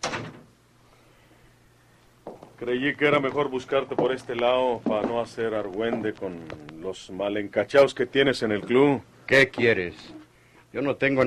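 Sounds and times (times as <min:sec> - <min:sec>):
door swinging shut with a solid thud: 0:00.0 - 0:00.5
speech: 0:02.6 - 0:11.2.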